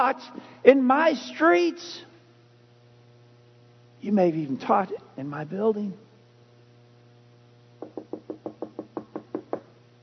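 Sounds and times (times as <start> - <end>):
speech: 0.0 - 2.1, 4.0 - 6.0
low steady hum: 0.0 - 10.0
knocking on a door: 7.8 - 9.7.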